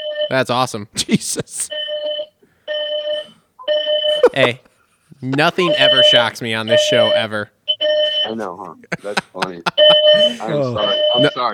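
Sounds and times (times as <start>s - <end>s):
speech: 0.3s - 1.8s, 4.4s - 7.6s, 8.2s - 11.5s
hotel fire alarm electronic tones: 1.7s - 4.6s, 5.5s - 8.4s, 9.7s - 11.5s
laughter: 4.1s - 6.2s, 8.8s - 11.4s.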